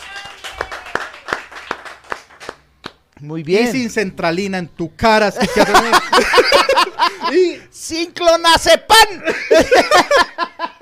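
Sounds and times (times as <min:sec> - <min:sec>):
steady rhythmic clapping: 0:00.0 - 0:03.7
speech: 0:03.2 - 0:06.6, 0:07.3 - 0:10.5
laughter: 0:05.4 - 0:07.7, 0:09.2 - 0:10.7.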